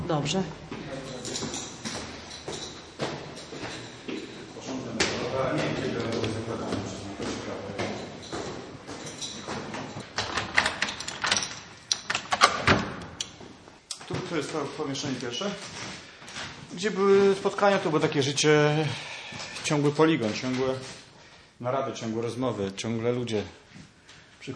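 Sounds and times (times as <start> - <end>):
footsteps: 0.0 - 10.2, 13.3 - 18.3, 19.0 - 21.2
speech: 0.1 - 1.5, 14.5 - 15.9, 16.8 - 21.0, 21.6 - 23.6
apartment door handle and latch clicking: 10.1 - 13.3.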